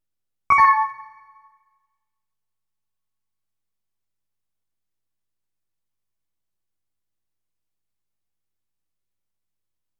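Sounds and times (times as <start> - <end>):
game menu cancel music: 0.5 - 1.4.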